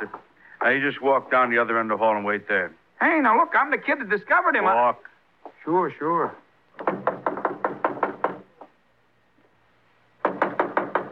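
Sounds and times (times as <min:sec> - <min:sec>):
speech: 0:00.0 - 0:07.0
police knocking on a door: 0:06.8 - 0:08.7, 0:10.2 - 0:11.1.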